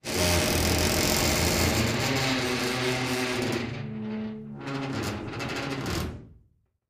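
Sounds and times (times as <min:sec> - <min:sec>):
vault outer door opening: 0:00.1 - 0:06.3.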